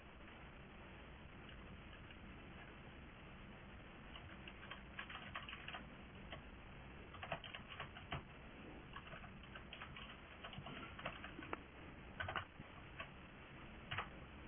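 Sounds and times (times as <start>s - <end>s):
steady low hiss: 0.0s - 14.4s
computer keyboard typing: 4.1s - 6.4s, 7.1s - 8.3s, 8.9s - 11.6s, 12.2s - 13.2s, 13.9s - 14.1s.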